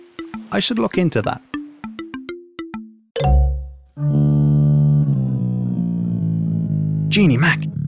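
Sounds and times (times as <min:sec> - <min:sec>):
bright plucked notes climbing upward: 0:00.0 - 0:06.3
speech: 0:00.5 - 0:01.5, 0:07.2 - 0:07.7.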